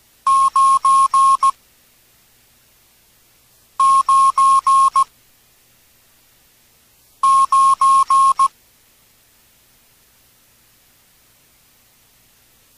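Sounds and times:
mid-pitched Morse code tone beeps for the digit nine: 0.3s - 1.5s, 3.8s - 5.1s, 7.2s - 8.5s.

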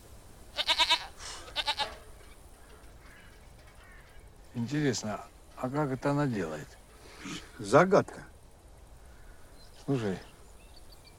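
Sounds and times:
goat bleating on the roof of a house: 0.5s - 2.0s
faint breathy noise: 1.1s - 1.6s, 6.9s - 7.7s, 8.8s - 10.5s
speech: 4.6s - 8.3s, 9.9s - 10.3s.

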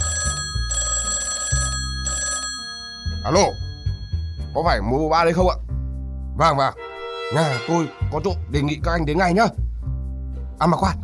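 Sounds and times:
electronic telephone ringing tone while calling the police emergency number: 0.0s - 4.6s
speech: 3.2s - 3.6s, 4.5s - 5.6s, 6.4s - 9.6s, 10.6s - 11.0s.

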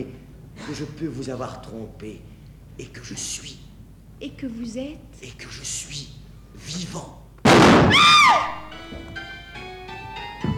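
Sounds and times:
speech: 0.0s - 7.2s
gunshot in a French stage-play recording: 7.5s - 8.6s.

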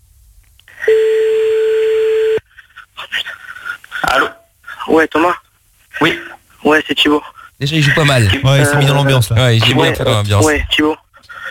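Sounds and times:
telephone tone as a call is placed: 0.8s - 2.4s
speech: 4.9s - 5.4s, 6.0s - 11.0s.

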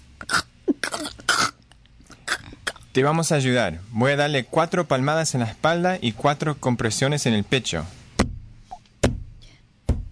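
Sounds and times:
baby coughing and choking in a staged scene: 0.2s - 1.6s, 2.2s - 2.9s
speech: 2.9s - 8.0s.

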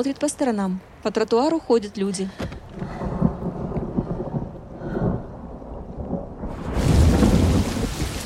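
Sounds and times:
speech: 0.0s - 2.9s
thunder rumbling: 2.7s - 8.2s
heavy rain pouring at night: 2.8s - 8.2s.

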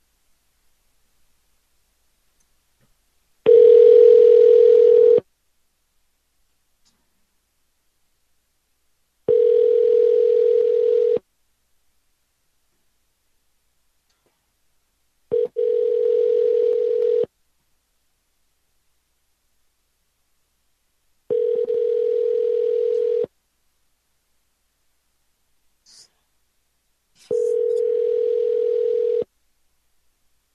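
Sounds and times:
ringback tone of an outgoing phone call: 3.5s - 5.2s, 9.3s - 11.2s, 15.3s - 17.3s, 21.3s - 23.3s, 27.2s - 29.3s.

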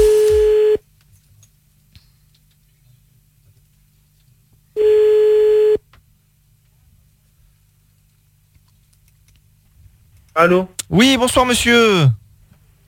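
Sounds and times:
telephone ringback tone on a call back: 0.0s - 0.8s, 4.8s - 5.8s
speech: 10.4s - 12.2s.

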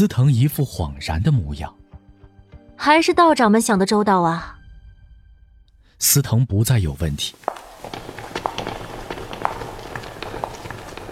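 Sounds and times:
speech: 0.0s - 1.8s, 2.8s - 4.5s, 6.0s - 8.0s
footsteps of a group of people walking in a cave: 7.2s - 11.1s.

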